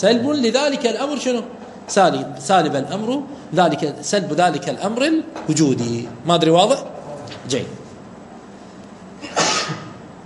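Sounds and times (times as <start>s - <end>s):
speech: 0.0s - 7.8s
person sneezing: 9.2s - 10.0s.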